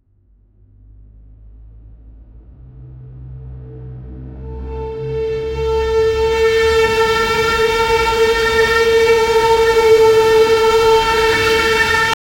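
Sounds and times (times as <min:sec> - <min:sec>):
long war emergency siren: 0:04.4 - 0:12.2.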